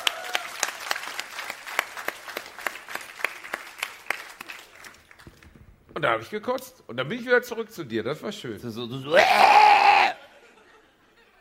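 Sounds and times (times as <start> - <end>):
small live audience clapping for a young woman: 0.0 - 5.6
speech: 6.0 - 9.7.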